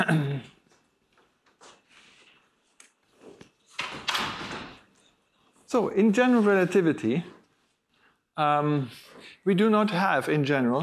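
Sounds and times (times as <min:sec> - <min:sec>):
speech: 0:00.0 - 0:00.6, 0:05.7 - 0:07.4, 0:08.4 - 0:10.8
doors being closed: 0:03.7 - 0:05.0.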